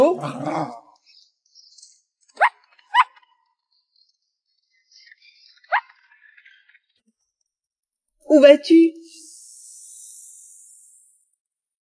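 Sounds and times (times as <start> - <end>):
speech: 0.1 - 0.8, 8.3 - 9.0
small dog yapping: 2.4 - 3.2.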